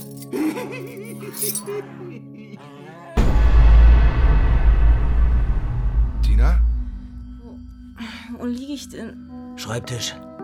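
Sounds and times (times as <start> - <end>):
keys jangling: 0.0 - 1.8
speech: 0.6 - 2.8, 8.4 - 10.3
low rumble: 3.2 - 8.0.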